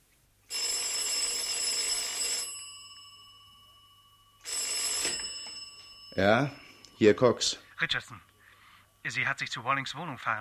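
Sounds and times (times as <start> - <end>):
telephone bell ringing: 0.5 - 6.8
speech: 6.2 - 8.3, 9.0 - 10.3.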